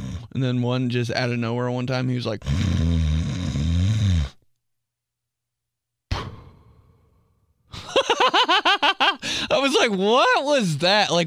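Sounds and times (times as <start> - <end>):
person imitating a loud strange snore: 0.0 - 0.4, 2.4 - 4.4
speech: 0.4 - 3.1, 9.8 - 11.2
laughter: 7.8 - 9.2.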